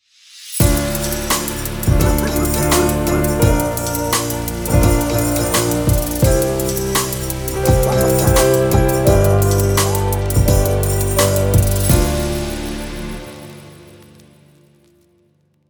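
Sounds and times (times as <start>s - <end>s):
short hip hop piano intro: 0.6s - 14.7s.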